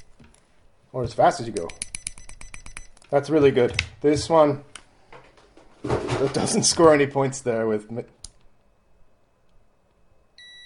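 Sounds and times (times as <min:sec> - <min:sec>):
digital multimeter high-pitched electronic beep: 0:00.0 - 0:00.2, 0:01.6 - 0:03.0, 0:10.4 - 0:10.6
speech: 0:00.9 - 0:01.8, 0:03.1 - 0:04.7, 0:06.2 - 0:08.2.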